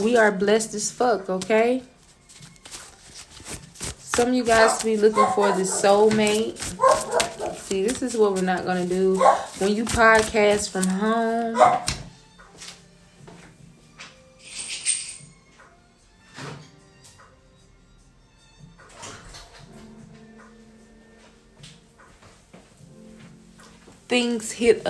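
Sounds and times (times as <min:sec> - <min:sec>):
speech: 0:00.0 - 0:01.9, 0:04.2 - 0:12.0, 0:24.1 - 0:24.8
dogs whimpering at home: 0:04.6 - 0:06.1, 0:06.8 - 0:07.6, 0:09.2 - 0:09.5.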